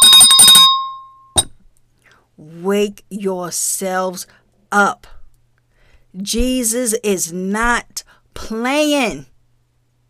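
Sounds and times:
hand bell ringing: 0.0s - 1.5s
speech: 2.4s - 5.2s, 6.1s - 9.3s.

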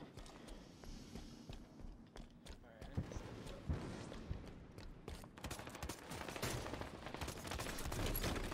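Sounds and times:
first-person shooter video game gunfire with sniper rifle: 3.0s - 8.5s.

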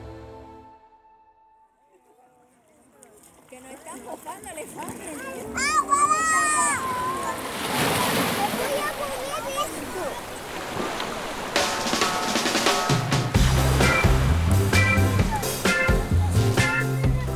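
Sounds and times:
small group of sunbathing tourists chattering: 1.8s - 11.5s, 13.6s - 17.3s
children's voices: 2.0s - 11.1s, 14.8s - 17.3s
Caribbean Sea waves washing in on the north coast of Jamaica: 3.7s - 17.3s
broad surf noise: 4.0s - 17.3s
rhythmic music thumping: 11.6s - 17.3s.

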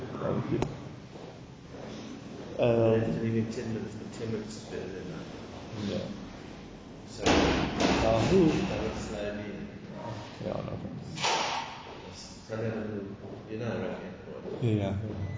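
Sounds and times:
people talking in the room: 0.0s - 0.8s, 2.5s - 6.2s, 7.1s - 11.3s, 12.0s - 15.3s
door closing with a muffled thump: 7.2s - 9.1s.

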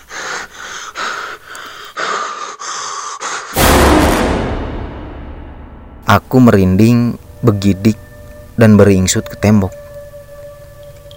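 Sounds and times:
slow ragged heavy breathing: 0.0s - 3.6s
speech: 6.1s - 8.0s, 8.6s - 9.8s.

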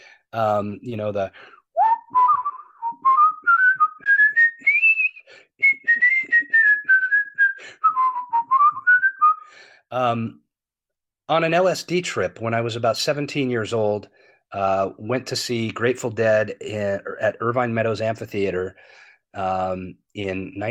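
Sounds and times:
speech: 0.3s - 2.2s, 9.9s - 10.4s, 11.3s - 20.7s
person whistling a tune with a controlled warble: 1.8s - 9.5s.

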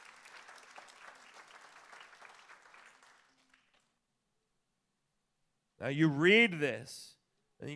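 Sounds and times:
audience applauding: 0.0s - 4.0s
speech: 5.8s - 7.7s.

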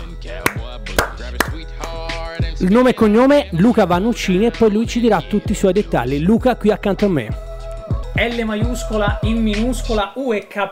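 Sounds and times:
steady busy music bed: 0.0s - 10.7s
sharp hand claps in a radio studio: 0.4s - 2.1s
speech: 2.6s - 7.4s, 8.2s - 10.7s.

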